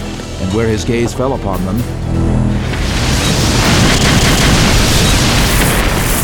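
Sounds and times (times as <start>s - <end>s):
speech: 0.5s - 2.4s
war machines exploding in a loud roaring blast: 2.5s - 6.2s.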